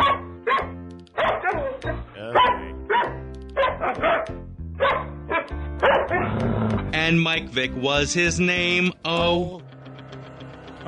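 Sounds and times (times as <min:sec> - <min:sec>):
dog barking in rapid bursts: 0:00.0 - 0:06.3
speech: 0:07.1 - 0:09.7.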